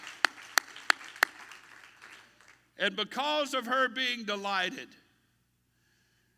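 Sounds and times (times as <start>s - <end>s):
audience clapping hands in unison: 0.0s - 2.7s
speech: 2.8s - 5.0s.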